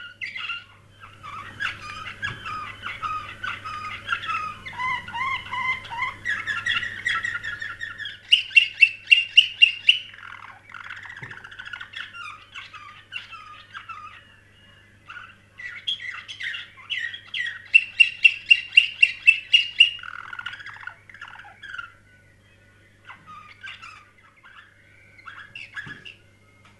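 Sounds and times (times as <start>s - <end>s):
canary singing: 0.0s - 26.7s.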